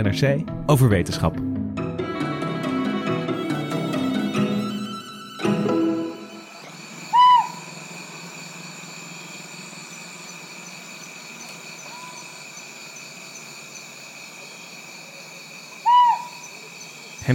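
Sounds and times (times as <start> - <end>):
speech: 0.0 - 1.9
music: 0.0 - 6.7
steady high insect drone at night: 3.2 - 17.3
Rinjani scops owl hooting on Lombok: 6.2 - 8.8, 9.4 - 17.3.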